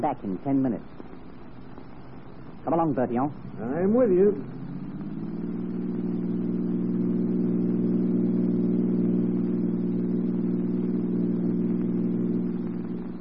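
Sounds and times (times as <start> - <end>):
speech: 0.0 - 1.1, 2.6 - 4.6
car engine droning as the vehicle pulls away: 2.2 - 13.1.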